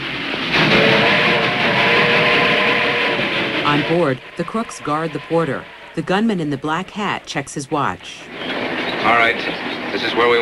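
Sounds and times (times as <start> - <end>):
train chugging into a tunnel: 0.0 - 10.4
speech: 3.7 - 10.4.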